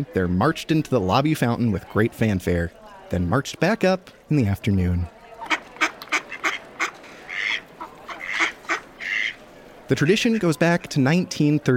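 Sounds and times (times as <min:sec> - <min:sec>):
speech: 0:00.0 - 0:05.2, 0:09.9 - 0:11.7
ducks quacking: 0:05.4 - 0:11.1.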